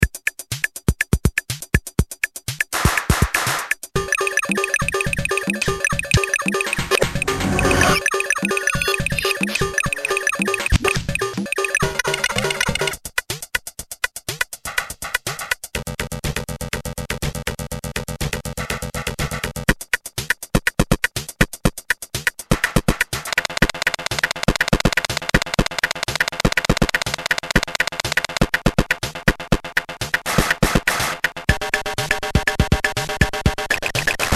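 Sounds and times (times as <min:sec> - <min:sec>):
XR10 drum machine drums: 0:00.0 - 0:34.3.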